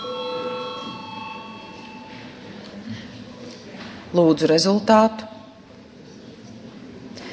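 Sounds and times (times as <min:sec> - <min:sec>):
parliamentary voting bell ringing: 0:00.0 - 0:02.5
low murmur of a large hall: 0:00.0 - 0:07.3
speech: 0:04.1 - 0:05.3.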